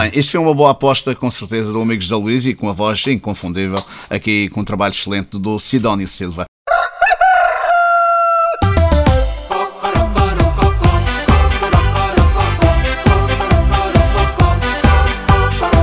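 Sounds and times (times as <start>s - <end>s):
speech: 0.0s - 6.5s
rooster crowing: 6.7s - 8.6s
upbeat band with driving drums and rhythmic instruments: 8.6s - 15.8s.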